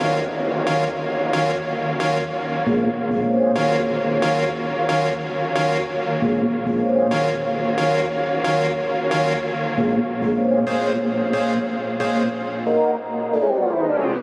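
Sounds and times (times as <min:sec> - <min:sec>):
flow synth in D minor: 0:00.0 - 0:14.2.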